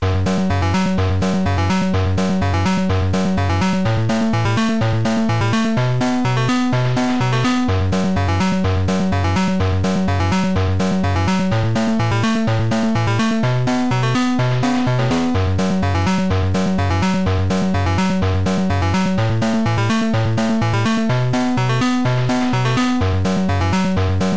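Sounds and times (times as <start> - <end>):
8-bit game concentration music loop: 0.0 - 24.3.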